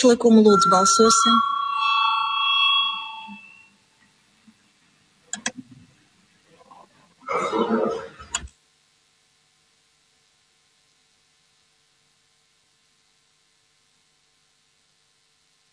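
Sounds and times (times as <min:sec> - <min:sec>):
speech: 0:00.0 - 0:01.5
parliamentary voting call bell ringing: 0:00.1 - 0:03.6
sharp clicks: 0:05.3 - 0:05.6.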